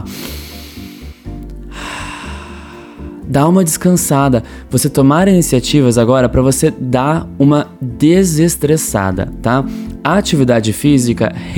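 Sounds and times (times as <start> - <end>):
deep breathing in and out: 0.0 - 3.2
low sustained music: 0.0 - 11.5
speech: 3.3 - 11.5.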